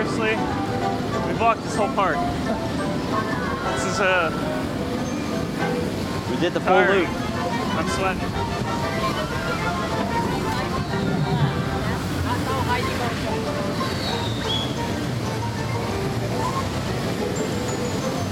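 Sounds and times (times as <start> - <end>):
churning water shooting out and splashing from a theme park water ride: 0.0 - 18.3
faint voices murmuring: 0.0 - 18.3
speech: 1.4 - 4.6, 6.3 - 8.8.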